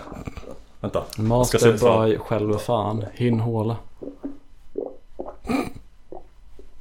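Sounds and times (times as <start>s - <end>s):
stomach rumbling: 0.0s - 0.8s, 3.1s - 6.7s
speech: 0.8s - 3.9s.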